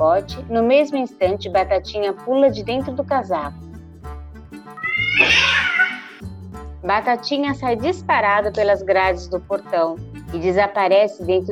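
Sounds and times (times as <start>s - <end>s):
speech: 0.0s - 3.7s, 5.0s - 11.5s
cat meowing: 4.8s - 6.2s.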